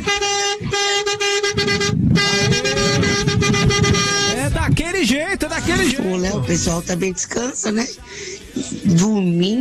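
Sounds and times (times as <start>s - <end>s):
vehicle horn blaring in long sustained blasts: 0.0s - 4.6s
low rumbling engine: 0.0s - 7.4s
road noise: 0.0s - 9.5s
speech: 5.0s - 9.5s.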